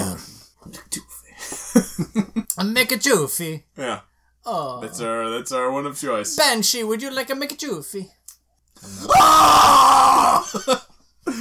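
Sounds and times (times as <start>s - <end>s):
speech: 1.8s - 8.2s, 8.8s - 11.3s
person yelling with a strained raw tone: 9.1s - 10.5s.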